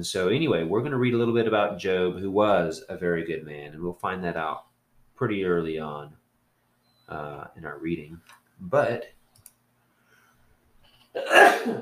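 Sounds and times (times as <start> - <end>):
speech: 0.0 - 6.2, 7.1 - 9.2, 11.2 - 11.8
person sneezing: 11.2 - 11.8.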